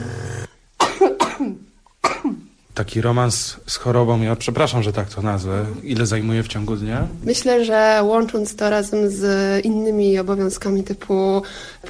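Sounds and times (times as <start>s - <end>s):
person with a chronic illness coughing harshly: 0.8s - 2.5s
speech: 2.8s - 11.8s.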